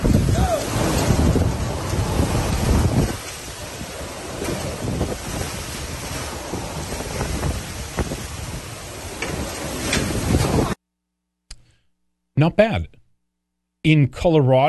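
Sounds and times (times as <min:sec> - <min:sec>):
strong winds roaring: 0:00.0 - 0:10.8
speech: 0:12.4 - 0:13.0, 0:13.8 - 0:14.6.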